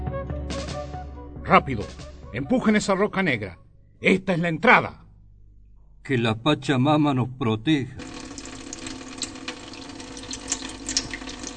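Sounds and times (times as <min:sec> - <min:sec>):
speech: 0:01.5 - 0:05.0, 0:06.0 - 0:08.0
water flowing in a continuous rushing wash with splashes and bubbling: 0:08.0 - 0:11.5.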